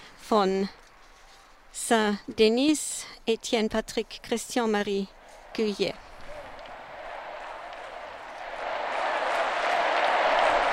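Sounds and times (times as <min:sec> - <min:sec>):
speech: 0:00.3 - 0:00.8, 0:01.8 - 0:06.1
large crowd applauding in a stadium: 0:06.1 - 0:10.7.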